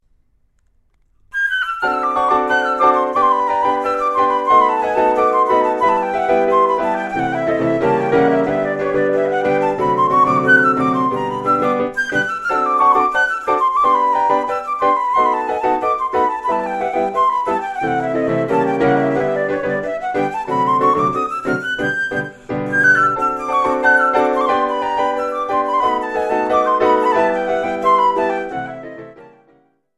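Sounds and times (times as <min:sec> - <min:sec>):
piano: 0:00.6 - 0:29.9
flute: 0:01.3 - 0:29.8.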